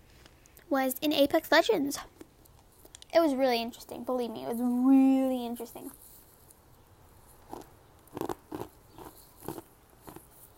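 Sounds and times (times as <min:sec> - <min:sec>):
speech: 0:00.7 - 0:02.2, 0:03.1 - 0:06.0
chewing ice: 0:07.4 - 0:10.3.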